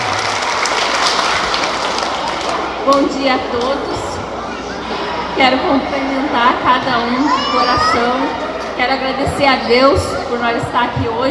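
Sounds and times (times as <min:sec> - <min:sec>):
audience applause for teachers: 0:00.0 - 0:02.9
speech: 0:02.9 - 0:04.0, 0:05.4 - 0:11.2.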